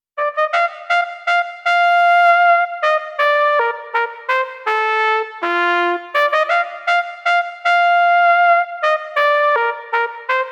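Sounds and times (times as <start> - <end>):
B-flat trumpet sound on a digital wind instrument: 0.2 - 10.5.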